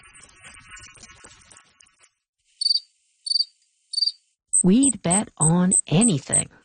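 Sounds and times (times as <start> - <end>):
cricket chirping in shrill trills: 2.6 - 5.0
speech: 4.6 - 6.6.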